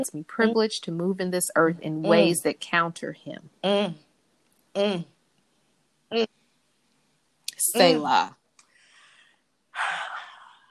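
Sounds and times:
speech: 0.0s - 4.1s, 4.8s - 5.1s, 6.1s - 6.4s, 7.6s - 8.4s
deep breath inhale: 8.7s - 9.4s.

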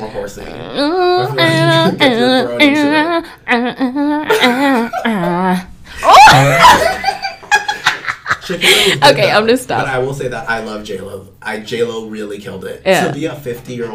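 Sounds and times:
speech: 0.0s - 5.7s, 8.6s - 13.9s
voice imitating a wolf howl: 0.4s - 6.8s
laughter: 4.2s - 9.0s.

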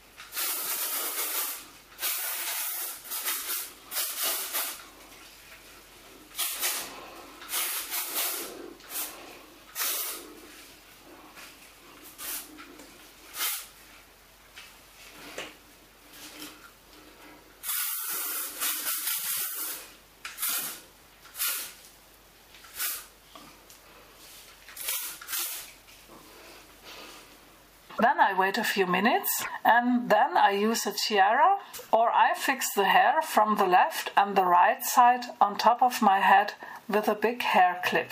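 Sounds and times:
volume hairspray from an aerosol can spritzed at hair roots: 0.3s - 4.8s, 7.5s - 9.1s, 9.8s - 10.5s, 12.1s - 12.6s, 13.3s - 13.7s, 17.6s - 20.8s
speech: 28.2s - 31.6s, 32.4s - 38.1s.

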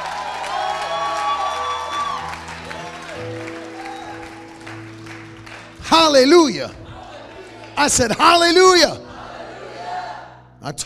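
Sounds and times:
large audience clapping: 0.0s - 8.9s
large audience cheering and shouting praise: 0.0s - 10.5s
speech: 5.9s - 6.8s, 7.8s - 9.0s, 10.6s - 10.8s.

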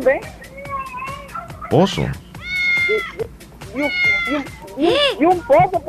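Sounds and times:
speech: 0.0s - 0.4s, 1.7s - 2.2s, 2.9s - 5.8s
cat meowing: 0.5s - 1.8s, 2.4s - 4.6s.

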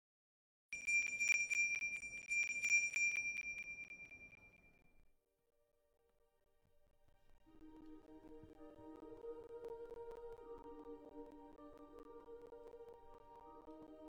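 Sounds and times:
small sleigh bell shaken in bright jingles: 0.8s - 4.8s
soft gentle music: 5.6s - 14.0s.

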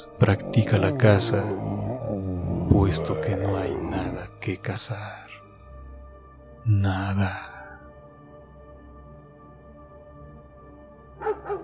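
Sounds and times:
dog barking violently in the distance: 0.0s - 4.2s, 11.2s - 11.6s
speech: 0.2s - 5.3s, 6.6s - 7.5s.

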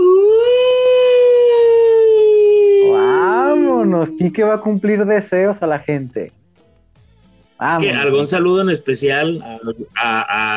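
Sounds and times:
voice imitating an ambulance siren: 0.0s - 4.7s
speech: 4.2s - 6.4s, 7.6s - 10.5s.

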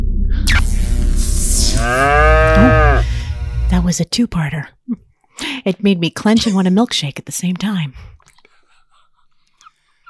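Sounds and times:
droning hum of a UFO sound effect: 0.0s - 4.0s
cow mooing: 1.7s - 3.1s
speech: 3.7s - 8.1s.

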